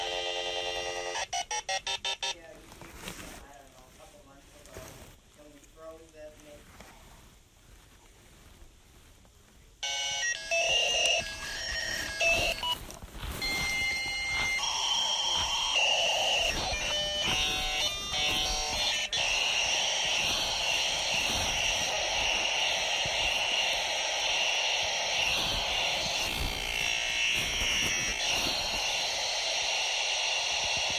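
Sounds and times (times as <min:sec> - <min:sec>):
dial-up modem phone line ringing: 0:00.0 - 0:02.4, 0:09.8 - 0:30.9
dial-up modem screeching handshake tones and data noise: 0:09.8 - 0:12.8, 0:13.4 - 0:29.8
dial-up modem touch-tone dialing beeps: 0:09.8 - 0:12.8, 0:13.4 - 0:19.8.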